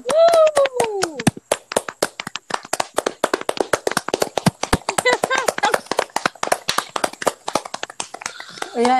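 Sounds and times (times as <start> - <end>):
short vocal whoop: 0.0 - 1.2
small group applauding with quick sharp hand claps: 0.0 - 8.9
speech: 8.8 - 8.9.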